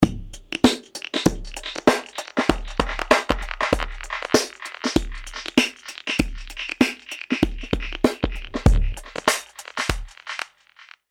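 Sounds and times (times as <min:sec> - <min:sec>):
band-pass filtered drums with delay: 0:00.0 - 0:11.0.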